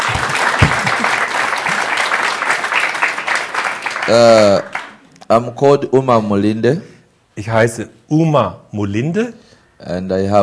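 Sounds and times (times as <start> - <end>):
audience clapping: 0.0 - 5.1
speech: 4.1 - 4.7, 5.3 - 10.4.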